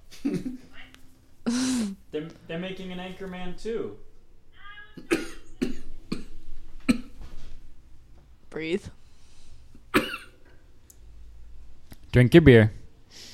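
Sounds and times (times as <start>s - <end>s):
short wet phlegmy coughs: 0.2s - 0.6s, 5.0s - 7.2s, 9.9s - 10.4s
speech: 2.5s - 4.1s, 8.6s - 9.0s, 12.2s - 13.2s.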